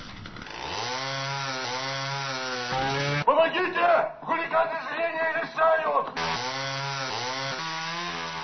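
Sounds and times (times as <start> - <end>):
loud buzzing saw sawing wood: 0.0 - 3.3, 6.2 - 8.4
person shouting urgently: 3.3 - 6.1
speech: 3.5 - 6.7.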